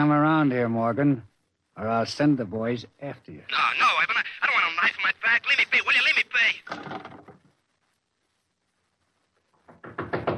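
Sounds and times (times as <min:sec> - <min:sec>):
speech: 0:00.0 - 0:07.2
loud rapid knocking on a door: 0:09.6 - 0:10.3.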